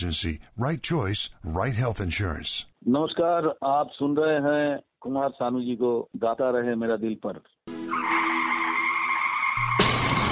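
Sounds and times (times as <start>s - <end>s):
speech: 0.0s - 7.5s
car tires skidding: 7.9s - 10.3s
glass shattering: 9.7s - 10.3s.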